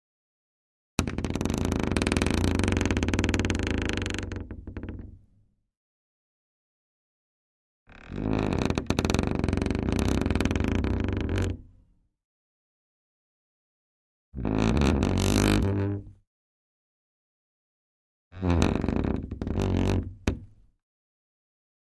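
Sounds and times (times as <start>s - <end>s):
wooden door creaking slow and deep: 1.0s - 5.2s, 7.9s - 11.6s, 14.4s - 16.0s, 18.4s - 20.4s.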